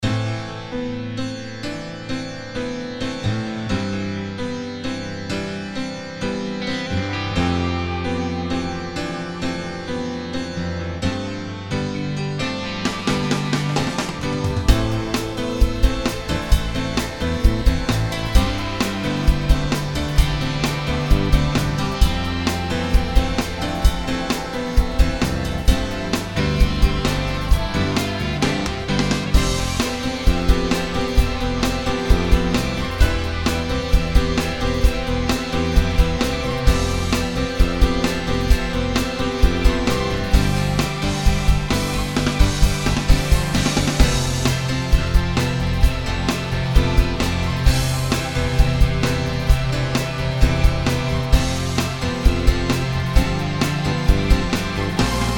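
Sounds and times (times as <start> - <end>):
pop track with piano: 0.0 - 55.3.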